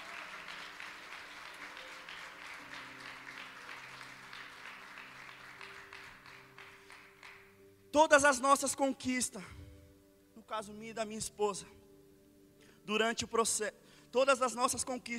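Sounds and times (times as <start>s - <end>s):
audience applauding: 0.0s - 7.6s
speech: 8.0s - 9.6s, 10.5s - 11.8s, 12.9s - 15.1s.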